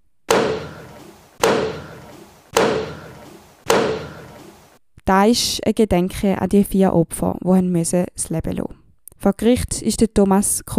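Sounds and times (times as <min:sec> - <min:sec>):
wooden gavel blows striking a judge's bench in a reverberant room: 0:00.3 - 0:04.7
speech: 0:05.1 - 0:10.7.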